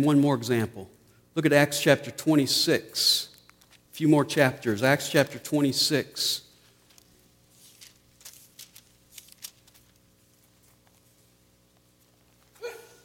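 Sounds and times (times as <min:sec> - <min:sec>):
speech: 0:00.0 - 0:03.3, 0:04.0 - 0:06.4
person reading aloud from the Bible: 0:00.0 - 0:06.5
papery rustling: 0:06.6 - 0:12.6
person sneezing: 0:12.6 - 0:13.0.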